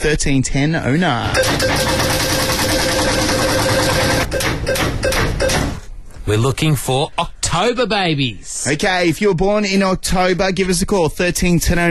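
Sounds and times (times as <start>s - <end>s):
speech: 0.0s - 5.7s, 6.3s - 11.9s
month prize wheel spinning for a birthday lotto giveaway: 1.4s - 4.4s.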